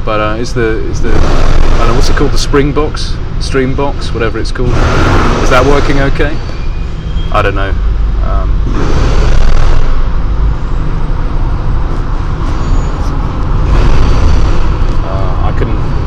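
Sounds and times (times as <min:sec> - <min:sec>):
cars driving past on a street: 0:00.0 - 0:16.0
constant broadband street traffic rumble: 0:00.0 - 0:16.0
speech: 0:00.1 - 0:06.6, 0:07.3 - 0:09.2.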